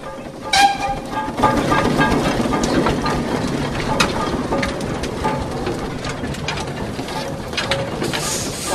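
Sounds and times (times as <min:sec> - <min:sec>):
big steam engine in a street procession rumbling and clanking: 0:00.0 - 0:08.7
rattling metal of a steam engine: 0:00.0 - 0:08.7
steam engine hissing: 0:08.0 - 0:08.7.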